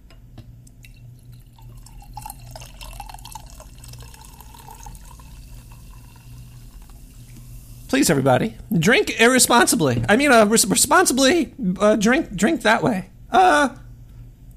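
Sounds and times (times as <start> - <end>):
soda dripping: 0.6 - 8.0
faint fizzing of soda: 0.7 - 8.1
sugary soda pouring into a glass of cheap whiskey: 0.8 - 8.0
speech: 7.9 - 13.8.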